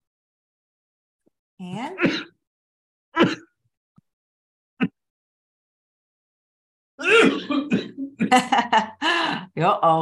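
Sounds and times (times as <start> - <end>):
speech: 1.6 - 2.3, 3.2 - 3.4, 9.6 - 10.0
person coughing after something went down the wrong way: 3.2 - 3.6, 7.0 - 8.3.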